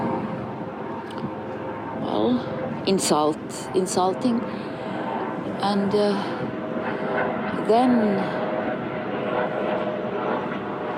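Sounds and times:
helicopter flying overhead in a park: 0.0s - 10.9s
speech: 2.3s - 4.8s, 5.6s - 6.5s, 7.7s - 8.4s.

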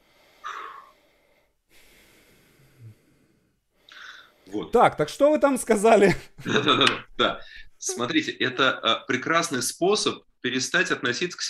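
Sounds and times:
person breathing deeply and slowly to calm down: 0.0s - 4.6s
speech: 4.5s - 11.4s.

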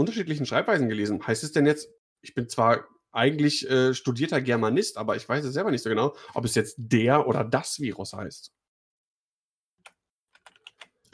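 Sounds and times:
speech: 0.0s - 8.6s
typing on a computer keyboard: 9.8s - 11.0s.

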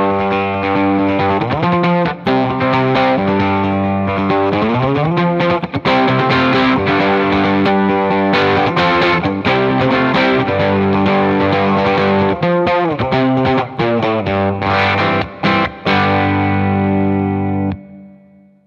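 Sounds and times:
overdriven electric guitar through tube amp with reverb: 0.0s - 18.6s.

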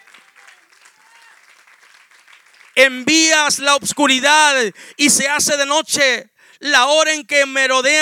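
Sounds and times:
audience applauding: 0.0s - 3.2s
speech: 2.8s - 8.0s.

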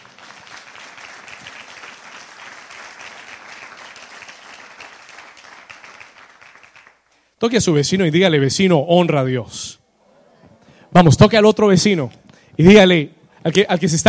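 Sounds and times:
audience applauding loudly: 0.0s - 7.1s
speech: 7.4s - 9.8s, 11.0s - 14.0s.

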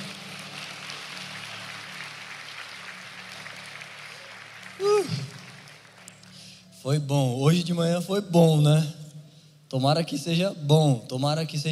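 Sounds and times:
audience applauding: 0.0s - 6.7s
speech: 6.8s - 9.0s, 9.7s - 11.7s.

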